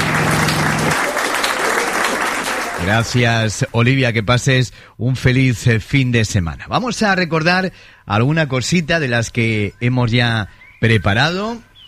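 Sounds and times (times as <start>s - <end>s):
low hum: 0.0s - 1.0s
big ovation of dense applause: 0.0s - 3.6s
speech: 2.9s - 11.8s.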